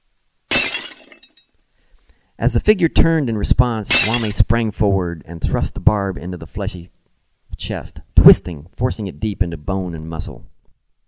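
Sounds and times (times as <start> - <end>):
ceramic cup shattering against a stainless steel table leg: 0.5 - 1.4, 3.9 - 4.4
scattered ceramic fragments tinkling: 0.5 - 1.4, 3.9 - 4.4
speech: 2.4 - 7.0, 7.6 - 10.5.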